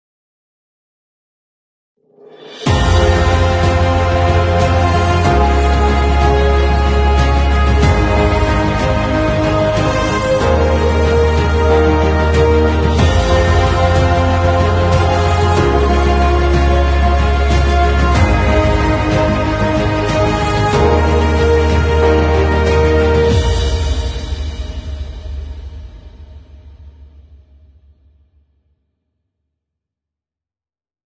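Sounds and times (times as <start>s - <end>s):
short epic dynamic cinematic music: 2.4s - 26.5s.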